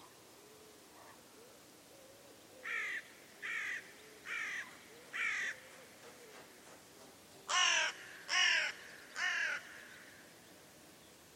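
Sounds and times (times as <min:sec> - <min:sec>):
bird calling with harsh cawing notes: 0:02.6 - 0:06.4, 0:07.5 - 0:10.3.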